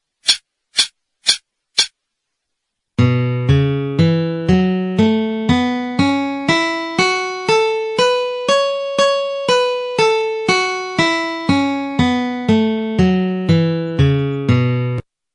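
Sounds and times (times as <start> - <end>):
F sharp minor pentatonic melody: 3.0 - 15.0.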